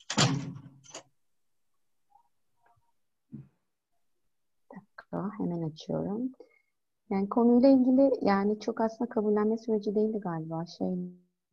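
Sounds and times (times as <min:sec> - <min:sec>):
door swinging shut with a loud scraping thud: 0:00.0 - 0:00.8
speech: 0:05.2 - 0:06.5, 0:07.1 - 0:11.2.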